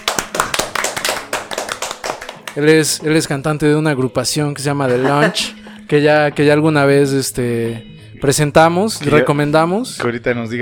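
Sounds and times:
a few people clapping hands in applause: 0.0s - 3.0s
speech: 2.6s - 10.6s
laughter: 4.7s - 5.8s.

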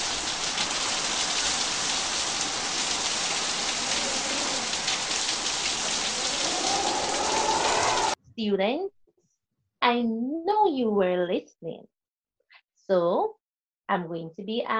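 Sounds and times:
steady rain falling: 0.0s - 8.2s
speech: 8.4s - 8.9s, 9.8s - 11.9s, 12.9s - 14.7s.

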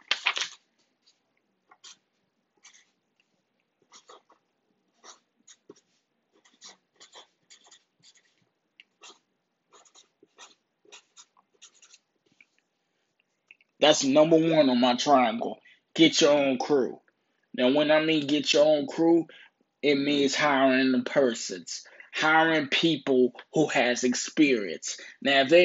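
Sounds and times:
pen scratching on paper: 1.7s - 3.1s, 3.8s - 12.6s
speech: 13.8s - 17.0s, 17.6s - 25.6s.

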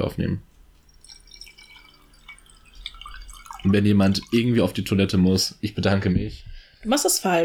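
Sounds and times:
speech: 0.0s - 0.5s, 3.6s - 7.4s
water trickling and dripping into a glass: 0.6s - 5.8s.

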